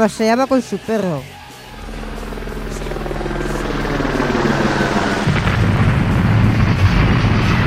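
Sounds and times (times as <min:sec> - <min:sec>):
speech: 0:00.0 - 0:01.4
helicopter rotor thump and engine roar: 0:01.7 - 0:07.6.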